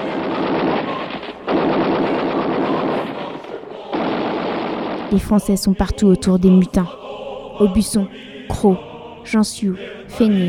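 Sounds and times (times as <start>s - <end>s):
machine guns firing: 0.0s - 5.1s
cannons and mortars firing: 0.0s - 5.6s
speech: 5.1s - 7.0s, 7.6s - 10.4s.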